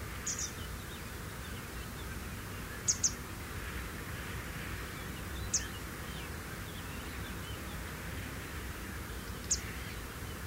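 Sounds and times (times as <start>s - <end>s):
grey wagtail calling in nocturnal migration: 0.1s - 3.8s, 4.8s - 10.3s.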